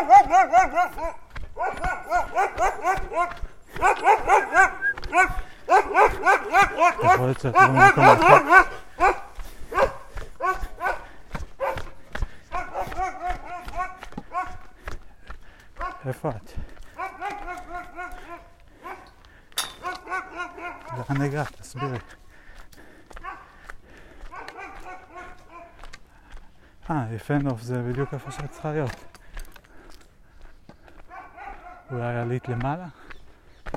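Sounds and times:
speech: 0.0 - 9.3, 16.0 - 16.7, 20.9 - 22.2, 26.9 - 29.2, 31.9 - 33.0
dog barking: 0.0 - 14.9, 15.8 - 16.2, 16.8 - 22.2, 23.2 - 25.9, 27.8 - 29.2, 30.9 - 33.1.

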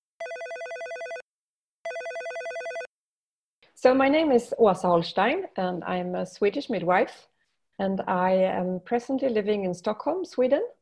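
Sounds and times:
telephone ringing with bright rapidly warbling trill: 0.2 - 1.2, 1.8 - 2.9
speech: 3.8 - 10.7.

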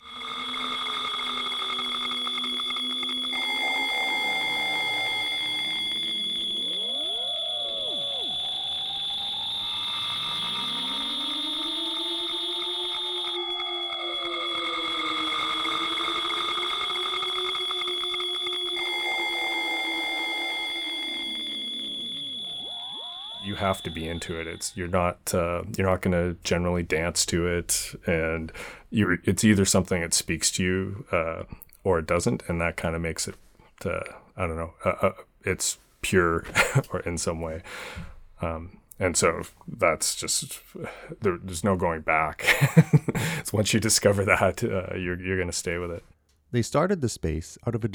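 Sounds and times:
shrill alarm-like tones in noise music: 0.0 - 24.8
warbling gliding pitches in noise music: 0.0 - 24.8
speech: 23.6 - 47.9
laughter: 42.4 - 43.4.

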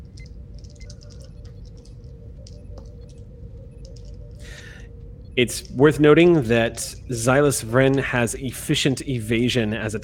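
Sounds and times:
low hum: 0.0 - 10.0
dice clattering: 0.1 - 3.2
speech: 5.4 - 10.0.

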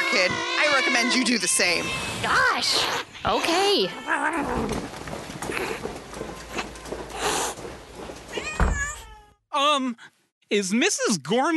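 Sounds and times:
cats meowing and yowling: 0.0 - 4.8, 8.3 - 9.4
speech: 0.1 - 5.9, 9.6 - 11.5.

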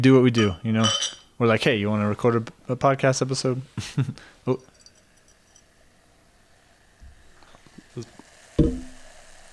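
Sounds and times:
speech: 0.0 - 4.7, 8.0 - 8.8
carbonated drink fizzing after pouring: 4.4 - 9.5.

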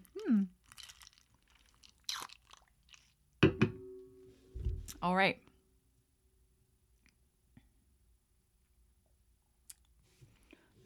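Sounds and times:
slurping and wet swallowing of a drink: 0.0 - 3.2
speech: 5.0 - 5.4.

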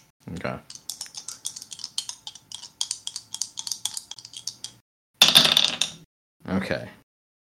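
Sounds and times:
speech: 0.3 - 0.8, 6.6 - 7.0
dice rattling on a table: 0.7 - 6.0.

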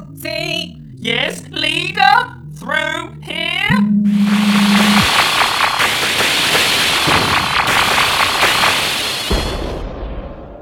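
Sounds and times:
steady roar: 0.0 - 8.2
speech: 0.2 - 4.8
gunfire from cadets at shooting practice: 4.5 - 10.0.

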